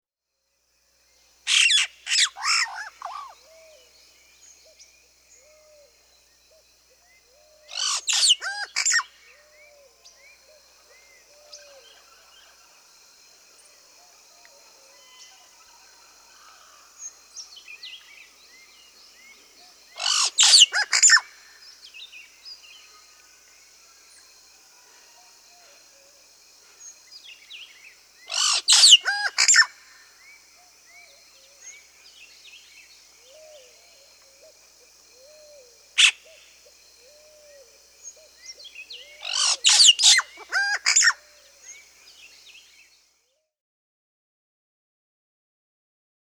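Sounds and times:
Yellow-rumped Cacique Cacicus cela calling in South America: 1.5 - 5.9, 7.0 - 12.9, 13.6 - 23.5, 26.7 - 42.3.

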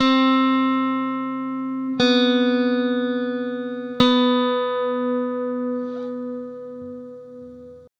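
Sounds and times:
slow guitar arpeggio: 0.0 - 7.9.

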